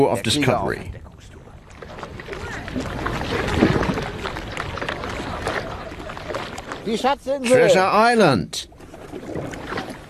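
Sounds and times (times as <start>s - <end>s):
speech: 0.0s - 1.0s, 6.8s - 8.7s
small boat sloshing and creaking on choppy water: 0.0s - 10.0s
waves slapping: 0.0s - 10.0s
steady wind buffeting the microphone: 0.2s - 6.9s.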